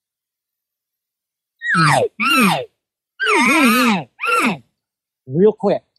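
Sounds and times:
person vocally imitating elk cow rapid contact buzz alarm calls: 1.6s - 4.6s
speech: 1.8s - 2.7s, 3.3s - 4.6s, 5.3s - 5.9s.

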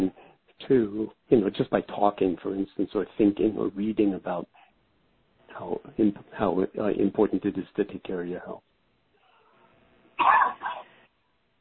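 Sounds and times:
speech: 0.6s - 4.6s, 5.5s - 8.7s
cough: 10.2s - 10.9s.

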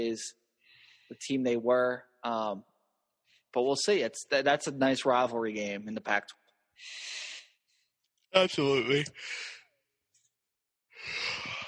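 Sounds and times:
speech: 0.0s - 0.4s, 1.1s - 2.7s, 3.5s - 7.3s, 8.3s - 9.5s
person yawning: 11.0s - 11.6s.

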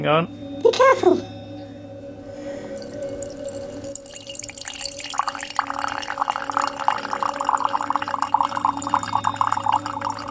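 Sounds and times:
speech: 0.0s - 1.4s
faint hum: 0.0s - 10.2s
weak lemon drink pouring into a cup: 2.8s - 10.2s.

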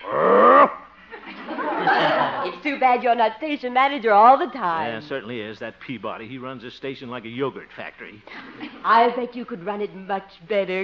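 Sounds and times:
man giving a growling roar in imitation of a lion: 0.0s - 0.8s
laughter: 1.1s - 2.8s, 4.6s - 5.6s
speech: 2.7s - 10.8s
quieter murmured vocal sounds: 4.7s - 6.4s.

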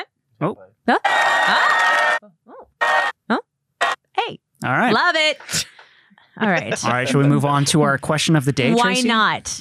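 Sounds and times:
speech: 0.4s - 1.7s, 4.9s - 5.6s, 6.4s - 9.5s
crowd clapping and cheering: 1.1s - 2.2s
laughter: 6.4s - 7.9s.

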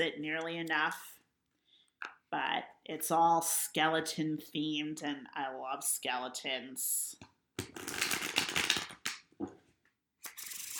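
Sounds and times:
speech: 0.0s - 1.2s, 2.3s - 8.1s
deck of cards riffle shuffling: 7.6s - 9.2s.

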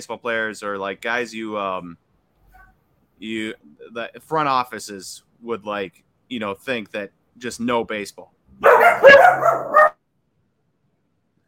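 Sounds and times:
speech: 0.0s - 2.0s, 3.2s - 9.9s
small dogs barking: 8.6s - 10.0s.

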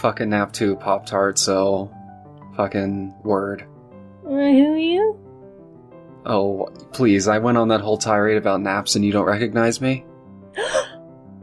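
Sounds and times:
speech: 0.0s - 2.0s, 2.6s - 3.7s, 4.3s - 5.2s, 6.2s - 10.9s
person gasping: 10.6s - 11.0s.

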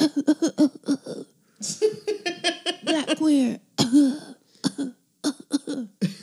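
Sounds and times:
woman coughing in harsh bursts: 0.0s - 1.2s, 2.8s - 6.2s
laughter: 1.6s - 3.4s
speech: 3.2s - 4.2s.

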